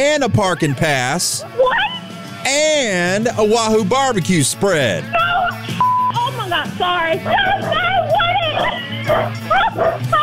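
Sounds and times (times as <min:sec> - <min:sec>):
laughter: 0:00.0 - 0:02.2, 0:04.8 - 0:10.2
speech: 0:00.0 - 0:05.8, 0:06.5 - 0:08.0
dog barking excitedly: 0:07.2 - 0:10.2.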